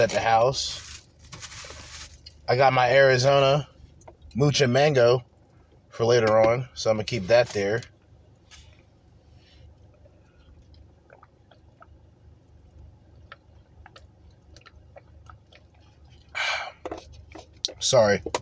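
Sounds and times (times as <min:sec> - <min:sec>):
speech: 0:00.0 - 0:00.9, 0:02.5 - 0:03.7, 0:04.4 - 0:05.3, 0:06.0 - 0:07.9, 0:17.9 - 0:18.3
person sipping a drink with wet mouth sounds: 0:09.9 - 0:11.9, 0:13.2 - 0:17.8.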